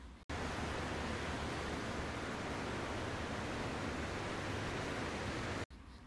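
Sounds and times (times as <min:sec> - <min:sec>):
hollow rushing hiss of a large seashell held to the ear: 0:00.3 - 0:05.7.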